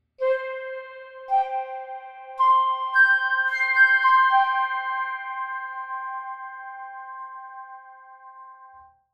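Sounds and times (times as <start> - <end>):
flute: 0.2 - 8.7
Bechstein D 282 piano: 0.2 - 8.8.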